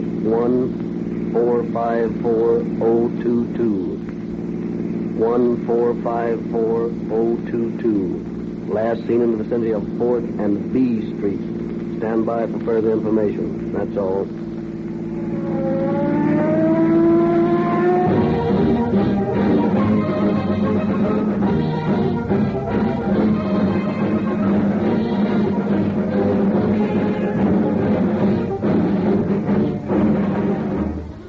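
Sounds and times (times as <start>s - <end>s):
engine revving with a rising whine: 0.0s - 31.2s
speech: 0.3s - 4.0s, 5.2s - 14.4s
streams of traffic speeding by: 14.9s - 31.2s.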